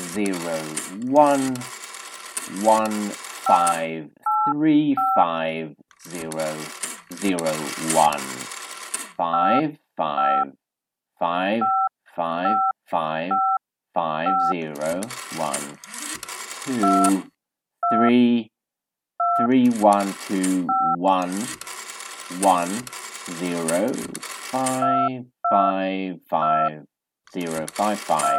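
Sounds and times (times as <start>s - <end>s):
person talking: 0.0s - 1.7s, 2.4s - 10.6s, 11.2s - 16.0s, 16.6s - 18.5s, 19.3s - 21.6s, 22.2s - 28.3s
telephone keypad dialing tones: 0.0s - 5.2s, 6.0s - 9.6s, 11.6s - 12.7s, 13.3s - 13.6s, 14.3s - 18.1s, 19.2s - 25.7s, 26.4s - 26.7s, 27.3s - 28.3s.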